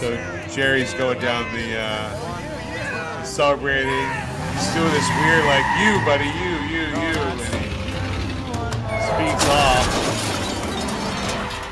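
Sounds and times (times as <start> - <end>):
speech: 0.0 - 2.5, 3.4 - 7.2, 9.2 - 10.3
speeding car crash: 4.2 - 11.7
glass shattering in a car accident: 9.2 - 11.7.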